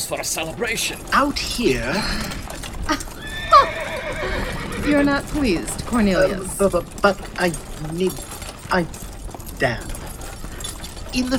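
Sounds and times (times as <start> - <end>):
speech: 0.0 - 3.2, 4.8 - 10.0, 11.1 - 11.3
horse neighing: 2.3 - 6.5.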